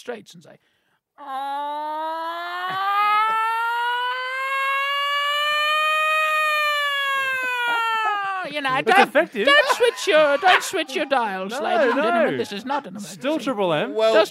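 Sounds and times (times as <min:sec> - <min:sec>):
speech: 0:00.0 - 0:02.9, 0:08.5 - 0:14.2
voice imitating an air raid siren wail: 0:01.2 - 0:08.5
laughter: 0:06.6 - 0:13.7.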